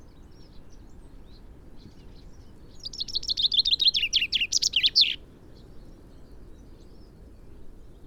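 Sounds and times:
Common chaffinch (Fringilla coelebs) singing a phrase of crisp repeated notes: 2.8s - 5.2s.

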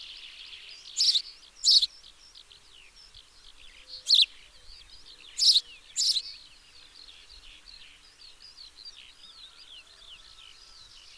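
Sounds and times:
house sparrow Passer domesticus giving loud buzzy chirps: 0.8s - 2.0s, 3.9s - 4.4s, 5.0s - 6.4s.

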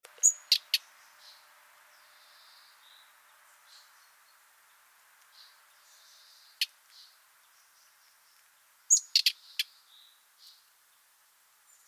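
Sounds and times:
common nightingale Luscinia megarhynchos calling: 0.1s - 11.8s.

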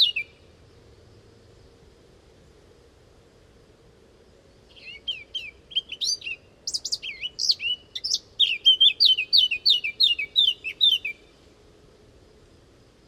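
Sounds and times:
Eurasian blackcap Sylvia atricapilla singing whistled and twittering notes: 0.0s - 0.4s, 4.7s - 11.3s.

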